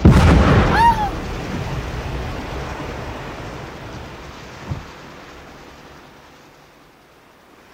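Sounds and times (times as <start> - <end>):
sharp loud blast: 0.0 - 2.3
rolling crashing sea waves: 0.0 - 7.7.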